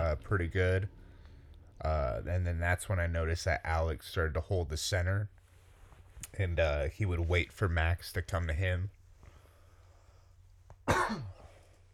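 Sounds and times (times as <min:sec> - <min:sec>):
speech: 0:00.2 - 0:01.0, 0:01.8 - 0:05.4, 0:06.2 - 0:09.0, 0:10.9 - 0:11.4
person coughing: 0:10.8 - 0:11.6.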